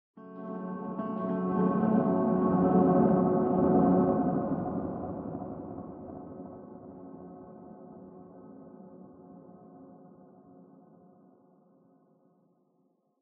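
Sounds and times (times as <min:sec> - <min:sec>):
piano: 0:00.2 - 0:08.4.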